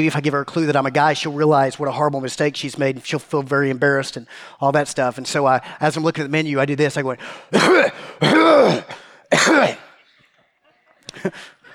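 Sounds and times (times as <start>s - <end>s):
speech: 0.0s - 9.8s, 11.2s - 11.6s
man clearing his throat and grunting: 7.5s - 10.1s
man coughing: 7.5s - 10.2s
laughter: 10.0s - 11.7s.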